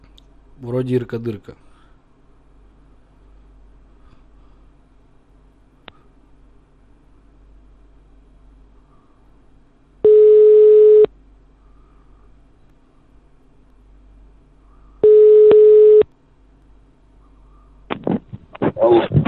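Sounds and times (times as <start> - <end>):
speech: 0.6 - 1.6
telephone line tones while calling a number: 10.0 - 11.1, 15.0 - 16.1.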